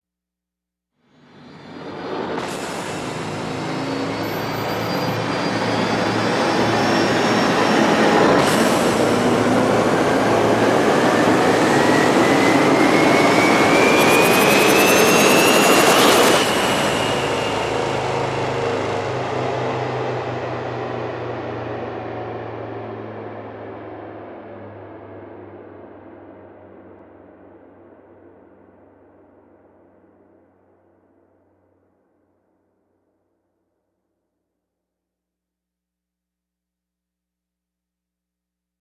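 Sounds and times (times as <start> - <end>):
power down rise effect: 1.8 - 20.0.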